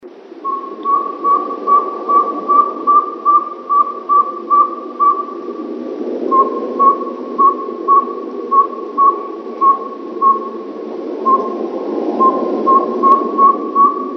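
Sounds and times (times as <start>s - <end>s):
saw-whet owl tooting: 0.4s - 5.6s, 6.3s - 10.6s, 12.2s - 14.1s.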